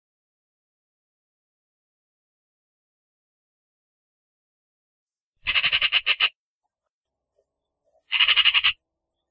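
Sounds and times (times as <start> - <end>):
Eurasian magpie making dry machine-gun rattles: 5.4 - 6.4, 8.1 - 8.8.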